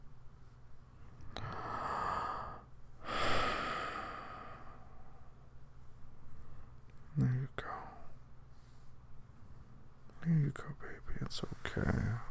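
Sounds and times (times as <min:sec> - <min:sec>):
deep breathing: 0:01.2 - 0:05.3
speech: 0:10.2 - 0:12.2.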